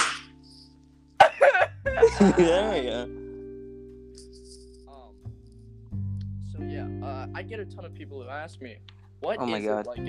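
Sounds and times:
hand slap between two people: 0.0 - 0.6
laughter: 1.2 - 3.0
speech: 2.1 - 3.2, 7.2 - 10.0.

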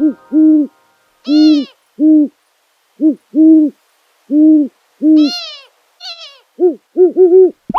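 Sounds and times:
long-eared owl hooting: 0.0 - 2.4, 3.0 - 7.7
long-eared owl higher squealing calls: 0.5 - 2.3, 5.1 - 7.7.

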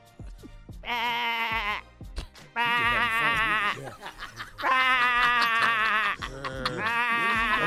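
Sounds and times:
speech: 0.8 - 1.4
person imitating sheep bleating: 0.8 - 1.9, 2.6 - 3.9, 4.6 - 7.6
laughter: 2.8 - 7.6.

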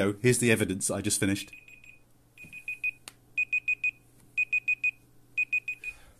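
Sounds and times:
speech: 0.0 - 1.7
online digital timer alarm beeping high electronic tones: 1.5 - 6.0.

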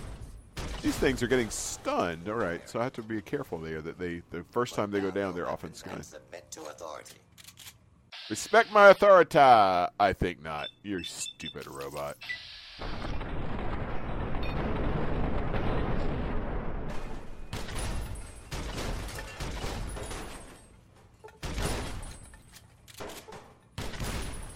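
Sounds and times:
grenade explosions in a video game: 0.0 - 2.6, 12.8 - 20.6, 21.4 - 22.2, 23.7 - 24.5
speech: 0.8 - 7.3, 8.3 - 13.3.

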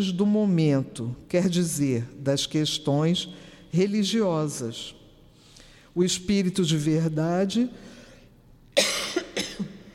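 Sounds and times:
speech: 0.0 - 5.0, 6.0 - 8.0
harsh rasping coughs: 8.8 - 9.9.

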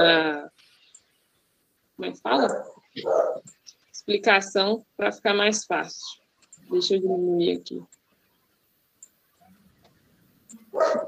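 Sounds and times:
speech: 0.0 - 0.5, 2.0 - 8.0, 10.8 - 11.0
dog barking: 2.3 - 3.5, 10.7 - 11.0.

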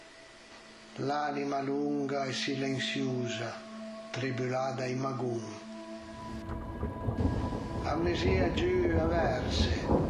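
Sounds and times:
speech: 1.0 - 5.7, 6.3 - 10.0
heavy storm rain: 6.1 - 10.0
rolling thunder from a thunderstorm behind the mountains: 6.1 - 10.0.

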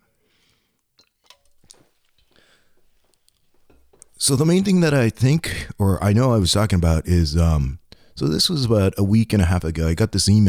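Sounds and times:
quick sip of a drink with wet mouth clicks and slurp: 0.2 - 4.2
speech: 4.2 - 10.4.

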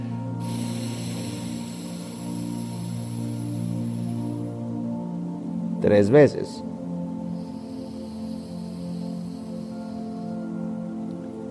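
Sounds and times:
low sustained tonal drone: 0.0 - 5.8, 6.6 - 11.4
exhale through the right nostril during alternate nostril breathing: 0.4 - 4.5, 7.3 - 10.6
speech: 5.8 - 6.8.

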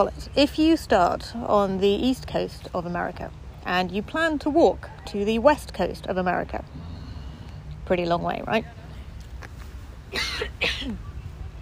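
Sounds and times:
speech: 0.0 - 6.8, 7.9 - 8.8, 10.9 - 11.1
quick harsh coughs: 10.1 - 11.0.

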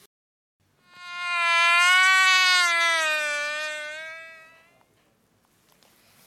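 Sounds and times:
mosquito wings buzzing: 0.8 - 4.8.

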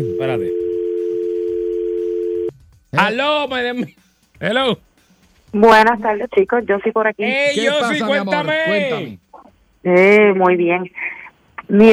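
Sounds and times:
speech: 0.0 - 0.6, 2.9 - 4.9, 5.5 - 9.2, 9.8 - 11.9
telephone line tone while calling: 0.0 - 2.5
faint noise: 2.5 - 11.9.

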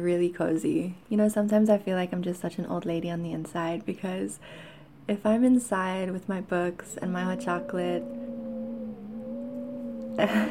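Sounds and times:
speech: 0.0 - 8.3, 10.2 - 10.4
wind howling outside: 6.8 - 10.4
laughter: 10.2 - 10.4.

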